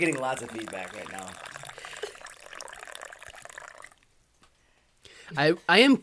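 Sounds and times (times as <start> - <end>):
speech: 0.0 - 1.5, 5.3 - 6.0
coffee pouring into a cup: 0.0 - 4.1
coffee trickling and dripping: 0.0 - 4.1.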